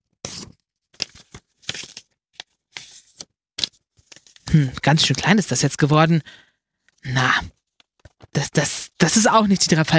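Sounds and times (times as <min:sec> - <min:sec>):
sheet of paper rustling and creasing as it is folded: 0:00.2 - 0:05.3
speech: 0:04.6 - 0:07.6, 0:08.4 - 0:09.9.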